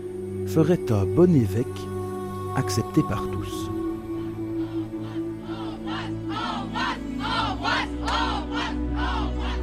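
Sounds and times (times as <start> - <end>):
speech: 0.5 - 1.9, 2.6 - 3.8
large crowd chanting in unison: 4.6 - 9.6.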